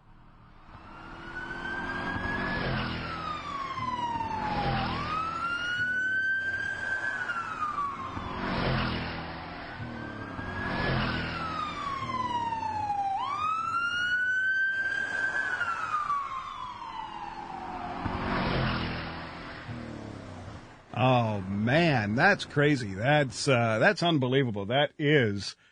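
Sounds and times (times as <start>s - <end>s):
holiday-weekend highway traffic rumble: 0.0s - 24.2s
wailing siren passing on a highway: 0.3s - 20.4s
speech: 21.4s - 25.6s.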